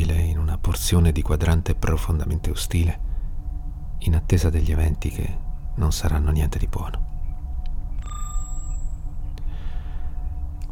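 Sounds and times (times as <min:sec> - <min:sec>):
steady low mechanical rumble: 0:00.0 - 0:10.7
speech: 0:00.7 - 0:03.0, 0:04.0 - 0:07.1
electronic body resources deficiency notification beep: 0:07.9 - 0:09.2.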